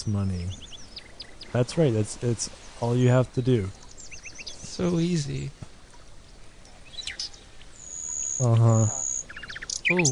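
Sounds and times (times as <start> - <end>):
speech: 0.0 - 0.7, 1.5 - 3.8, 4.6 - 5.6, 8.4 - 9.0, 9.9 - 10.0
birds chirping in springtime: 0.0 - 10.0
low voice-like tone: 8.4 - 9.0.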